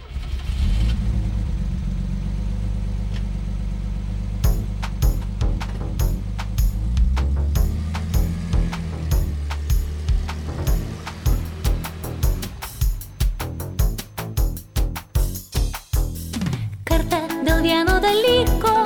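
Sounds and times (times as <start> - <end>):
car engine revving at high speed: 0.0 - 14.6
sharp clattering bursts: 4.4 - 18.7.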